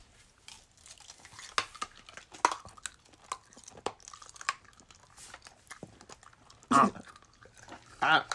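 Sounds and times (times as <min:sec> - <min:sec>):
crunchy chewing of a sweet fat-free banana-flavoured snack: 0:00.0 - 0:08.3.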